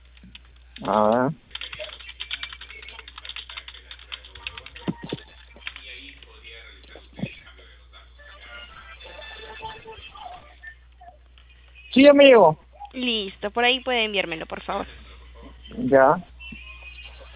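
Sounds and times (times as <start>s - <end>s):
typing a message on a keyboard: 0.0s - 6.4s
speech: 0.8s - 1.4s, 12.0s - 15.0s, 15.8s - 16.3s.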